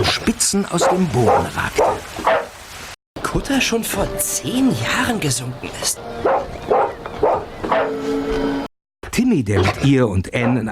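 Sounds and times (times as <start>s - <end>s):
speech: 0.1s - 2.0s, 3.4s - 6.4s, 9.3s - 10.7s
dog barking loudly: 0.8s - 2.5s, 6.2s - 8.0s.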